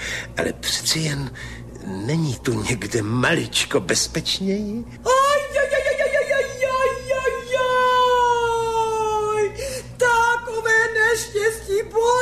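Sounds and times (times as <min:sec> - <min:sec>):
speech: 0:00.4 - 0:05.1
woman crying loudly with a wavering wail: 0:05.0 - 0:12.2.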